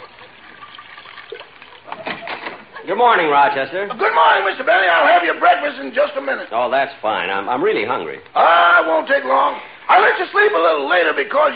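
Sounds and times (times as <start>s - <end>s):
cognac being poured into a dish: 0.0s - 2.2s
speech: 2.9s - 11.5s.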